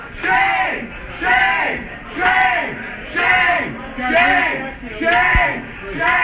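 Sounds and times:
crowd of protesters chanting a shouted word in a restaurant: 0:00.0 - 0:06.2.

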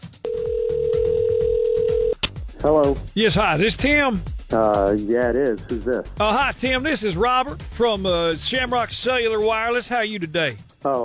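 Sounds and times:
electronic telephone line ring tone: 0:00.2 - 0:02.2
speech: 0:02.6 - 0:11.0.

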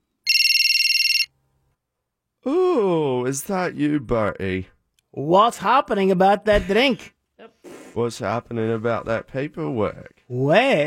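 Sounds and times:
telephone ringing with a warbling trill: 0:00.2 - 0:01.4
speech: 0:02.4 - 0:07.2, 0:08.0 - 0:10.8.

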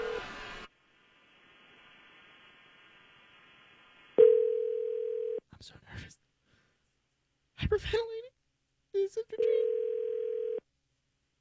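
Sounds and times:
telephone ringback tone waiting for pickup: 0:04.2 - 0:05.4, 0:09.4 - 0:10.6
speech: 0:05.6 - 0:06.3, 0:07.7 - 0:08.2, 0:09.0 - 0:09.7.

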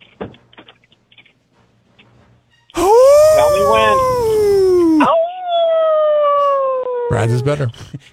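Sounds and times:
person imitating a wolf howl: 0:02.8 - 0:07.6
speech: 0:07.2 - 0:08.1.

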